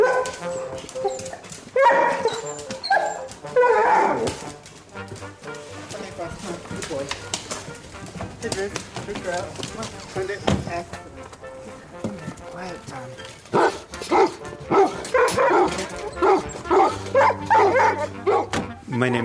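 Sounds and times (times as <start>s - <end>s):
Weimaraner dogs barking and whimpering excitedly setting off on a walk: 0.0s - 4.7s, 9.8s - 11.0s, 13.2s - 18.6s
hoof-like clopping: 0.0s - 18.8s.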